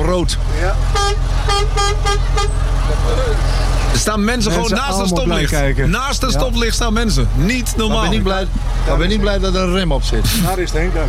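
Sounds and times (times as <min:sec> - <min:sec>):
low engine rumble: 0:00.0 - 0:11.0
speech: 0:00.1 - 0:11.0
car horn honking at a red light: 0:00.8 - 0:02.7.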